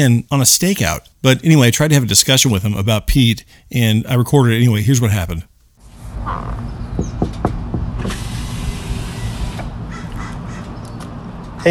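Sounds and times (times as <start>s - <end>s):
speech: 0.0s - 5.5s, 6.2s - 7.1s
low outdoor rumble: 2.6s - 11.6s
knocking on a parked car's window: 7.0s - 8.1s.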